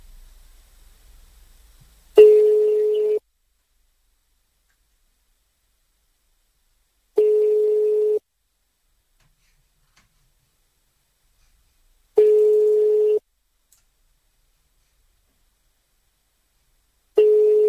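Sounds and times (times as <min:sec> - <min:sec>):
telephone ringback tone over the line: 0:02.2 - 0:03.2, 0:07.2 - 0:08.2, 0:12.2 - 0:13.2, 0:17.2 - 0:17.6.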